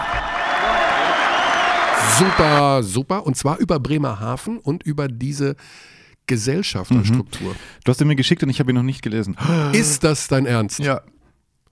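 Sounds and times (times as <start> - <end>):
crowd applause: 0.0 - 2.8
speech: 2.2 - 11.1.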